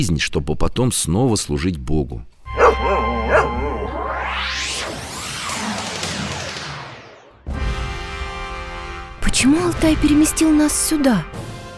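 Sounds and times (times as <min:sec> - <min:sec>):
speech: 0:00.0 - 0:02.3, 0:09.4 - 0:11.5
dogs barking and yelping: 0:02.5 - 0:04.6.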